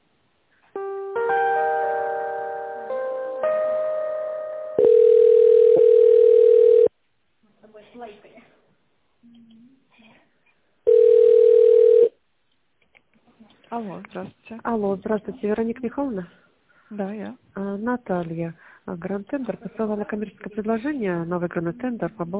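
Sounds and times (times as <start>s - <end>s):
stepped electronic telephone melody while an office call is transferred: 0.8s - 6.9s
long steady telephone buzzing tone: 4.8s - 6.9s, 10.9s - 12.1s
speech: 14.1s - 22.3s.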